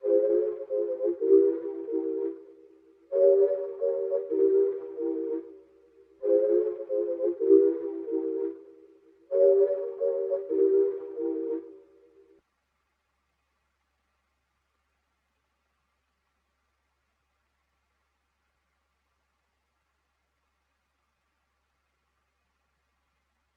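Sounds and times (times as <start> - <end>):
synth pad loop in F minor: 0.0 - 12.3.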